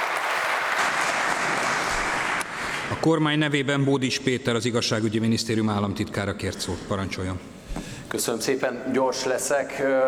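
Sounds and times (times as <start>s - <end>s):
applause in a parliament chamber: 0.0s - 3.0s
speech: 3.0s - 10.0s.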